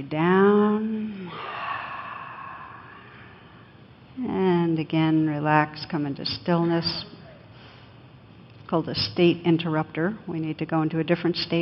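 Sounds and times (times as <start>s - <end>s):
speech: 0.0s - 0.9s, 4.2s - 7.1s, 8.7s - 11.6s
deep slow exhale during a guided breathing and stretching exercise: 1.0s - 3.8s.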